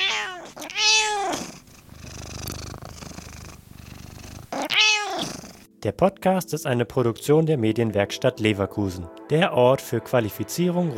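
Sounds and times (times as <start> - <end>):
domestic cat meowing: 0.0 - 1.6, 3.9 - 5.6
domestic cat purring: 0.0 - 5.7
speech: 5.8 - 10.9.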